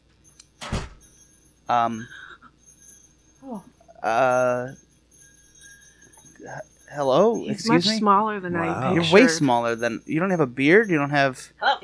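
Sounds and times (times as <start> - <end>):
door opening with a sharp thunk: 0.6 - 1.0
speech: 1.7 - 2.2, 3.4 - 4.8, 6.4 - 11.8
short wavering vocal sounds: 1.7 - 2.4, 3.4 - 4.8, 6.4 - 11.8.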